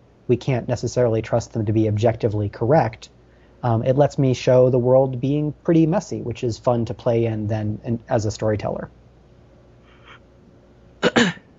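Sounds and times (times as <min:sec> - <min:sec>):
speech: 0:00.3 - 0:09.0
person coughing in two quick bursts: 0:11.0 - 0:11.5.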